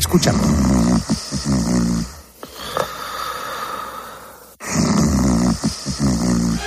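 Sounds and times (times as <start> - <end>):
speech: 0.1 - 0.6
man snoring loudly: 0.3 - 6.6.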